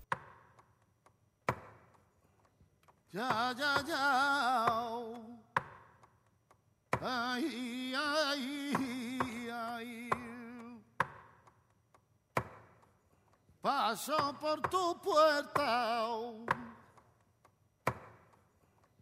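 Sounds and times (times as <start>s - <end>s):
speech: 3.1s - 5.4s, 7.0s - 10.0s, 13.6s - 16.6s
solo male voice singing flamenco melismatic phrases: 3.1s - 5.5s, 7.0s - 10.9s, 13.6s - 16.8s.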